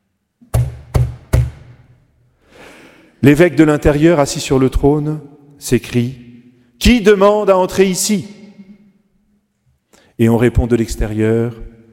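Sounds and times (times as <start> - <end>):
heavy knocks on a chapel entrance door during a funeral ceremony: 0.5 - 1.7
speech: 3.2 - 6.2, 6.8 - 8.4, 10.2 - 11.7.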